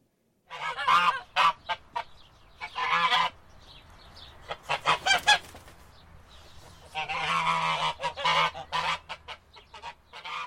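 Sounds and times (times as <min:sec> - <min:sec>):
goose honking and cackling: 0:00.5 - 0:03.4, 0:04.5 - 0:05.4, 0:06.8 - 0:10.4.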